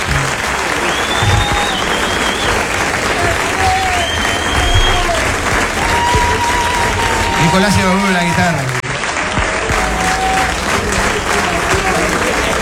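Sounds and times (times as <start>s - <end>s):
laughter: 0.0s - 8.9s, 9.7s - 12.6s
crowd applause: 0.0s - 12.6s
speech: 7.5s - 8.7s.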